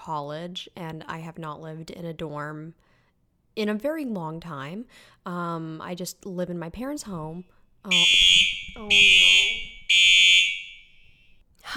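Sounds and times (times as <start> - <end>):
speech: 0.0 - 2.9, 3.6 - 9.4
shrill fire alarm blaring in a dorm: 7.9 - 11.2.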